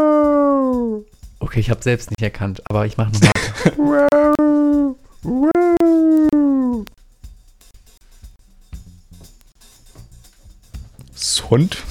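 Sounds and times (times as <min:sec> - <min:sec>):
person imitating a seal with a howling call: 0:00.0 - 0:01.1, 0:03.6 - 0:06.9
speech: 0:01.4 - 0:04.2, 0:05.2 - 0:05.5, 0:11.5 - 0:11.8
laughter: 0:03.2 - 0:04.3.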